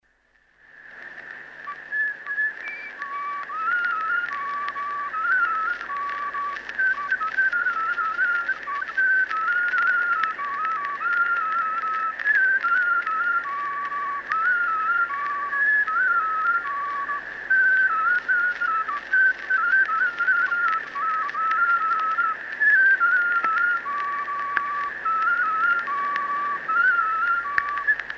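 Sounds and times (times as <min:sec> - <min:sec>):
willow whistle folk tune: 0:00.6 - 0:28.1.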